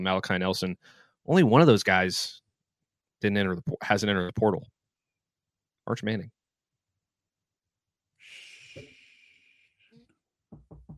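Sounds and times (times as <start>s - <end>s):
speech: 0.0s - 2.4s, 3.2s - 4.7s, 5.9s - 6.4s
long breathy hiss: 8.2s - 9.9s
knuckles knocking on wood: 10.5s - 10.9s.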